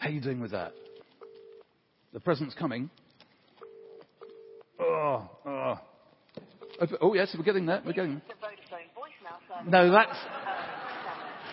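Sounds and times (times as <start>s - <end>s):
speech: 0.0s - 0.9s, 2.1s - 3.0s, 4.8s - 8.4s, 9.6s - 10.4s
phone keypad tones during dialing: 0.6s - 1.7s, 3.6s - 4.7s, 6.6s - 7.1s
laughter: 9.8s - 11.5s.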